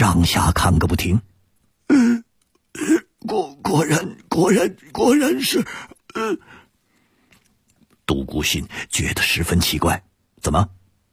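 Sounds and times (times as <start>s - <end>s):
speech: 0.0s - 1.3s, 2.8s - 6.5s, 8.1s - 10.8s
performer voicing violent coughing of a temple abbot in a dramatized reading: 2.8s - 3.6s, 5.5s - 6.5s.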